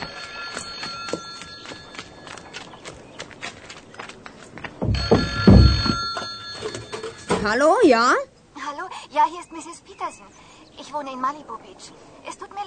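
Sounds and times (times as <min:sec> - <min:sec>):
telephone bell ringing: 0:00.0 - 0:02.5, 0:04.9 - 0:07.5
hoof-like clopping knocks: 0:00.0 - 0:07.5
speech: 0:07.4 - 0:08.3, 0:09.2 - 0:12.6.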